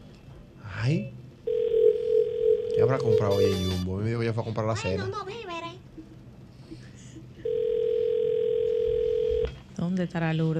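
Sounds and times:
speech: 0:00.8 - 0:01.2, 0:02.8 - 0:05.7, 0:09.8 - 0:10.5
steady electronic telephone ring tone on the line: 0:01.5 - 0:03.9, 0:07.4 - 0:09.5.

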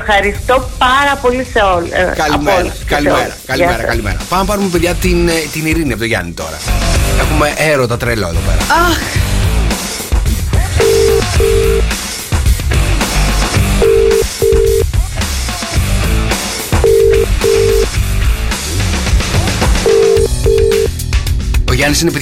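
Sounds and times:
music bed: 0:00.0 - 0:22.1
speech: 0:00.1 - 0:09.3, 0:21.9 - 0:22.1
telephone line ringback tones: 0:10.8 - 0:11.8, 0:13.8 - 0:14.8, 0:16.8 - 0:17.9, 0:19.8 - 0:20.9.

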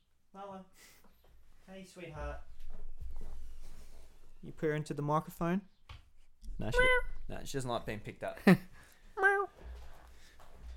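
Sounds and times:
speech: 0:00.4 - 0:01.0, 0:01.7 - 0:03.3, 0:04.4 - 0:05.8, 0:06.6 - 0:09.3
female cat meowing: 0:09.2 - 0:09.6.

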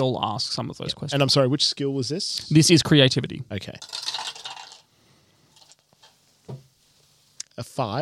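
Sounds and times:
speech: 0:00.0 - 0:04.1, 0:07.6 - 0:08.0
dice clattering on a table: 0:03.8 - 0:04.9.

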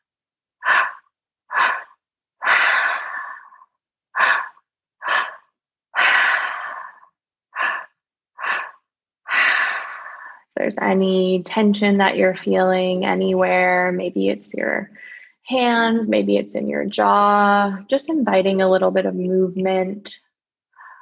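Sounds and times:
slow deep breathing: 0:00.6 - 0:10.5, 0:14.9 - 0:15.4, 0:20.7 - 0:21.0
speech: 0:10.6 - 0:20.2.

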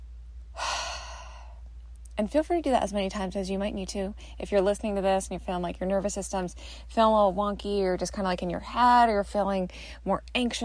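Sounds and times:
faint low hum: 0:00.0 - 0:10.6
deep slow breath: 0:00.5 - 0:01.7
speech: 0:02.2 - 0:10.6.

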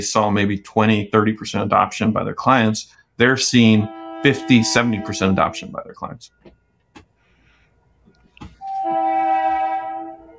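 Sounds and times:
speech: 0:00.0 - 0:06.6
commuter rail train horn blaring: 0:03.5 - 0:05.9, 0:08.6 - 0:10.3.

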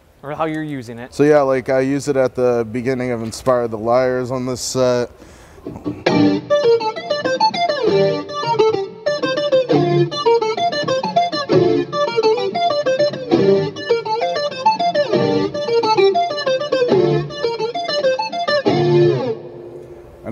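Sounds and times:
speech: 0:00.2 - 0:06.5, 0:08.0 - 0:08.3
electric guitar through heavy effects pedal playing arpeggiated line: 0:05.7 - 0:20.0.

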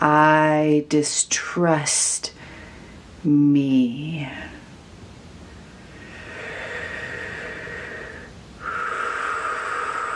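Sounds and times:
speech: 0:00.8 - 0:02.4, 0:03.2 - 0:04.6
slow deep breathing: 0:02.4 - 0:03.1, 0:05.4 - 0:10.1.

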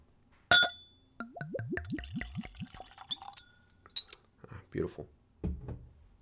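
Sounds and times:
sharp glassy clink: 0:00.5 - 0:01.0, 0:02.7 - 0:04.2
whiskey glugging from a bottle into a Glencairn glass: 0:00.5 - 0:04.2
speech: 0:04.8 - 0:05.2.

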